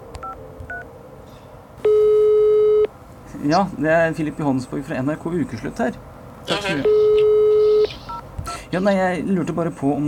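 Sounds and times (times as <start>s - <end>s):
telephone dialing beeps: 0.2s - 0.8s, 1.8s - 2.9s, 6.8s - 8.7s
loud steady telephone call tone: 1.8s - 2.9s, 6.7s - 8.2s
speech: 3.4s - 7.0s, 8.7s - 10.0s.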